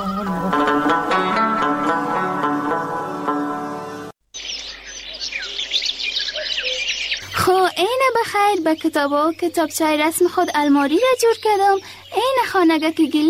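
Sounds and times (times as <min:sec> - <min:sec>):
tuneful music: 0:00.0 - 0:04.2
chorus of crows calling: 0:03.1 - 0:12.6
speech: 0:08.5 - 0:13.2.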